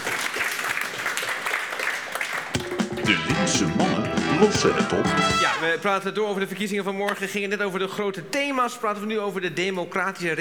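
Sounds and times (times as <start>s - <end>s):
audience applause during a talk program about elections: 0.0s - 5.7s
speech: 3.1s - 10.4s.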